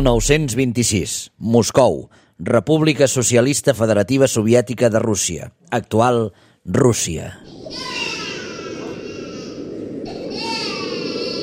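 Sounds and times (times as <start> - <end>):
speech: 0.0 - 8.0
newborn baby crying: 7.5 - 11.4.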